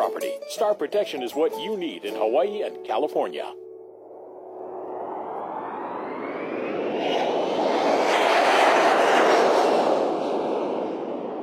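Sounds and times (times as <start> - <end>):
speech: 0.5 - 3.6
jet airliner roaring on takeoff: 3.9 - 11.4.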